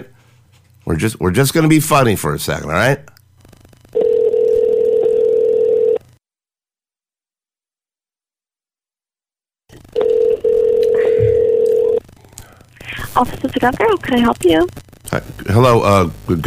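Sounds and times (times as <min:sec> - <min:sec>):
speech: 0:00.9 - 0:03.1, 0:13.2 - 0:16.4
electronic phone line ring tone: 0:04.0 - 0:06.0, 0:10.0 - 0:12.0.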